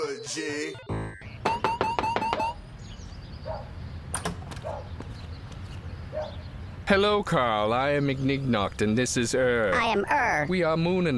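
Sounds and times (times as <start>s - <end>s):
speech: 0.3s - 1.0s, 6.9s - 11.1s
knocking on the door of a house: 1.4s - 2.6s.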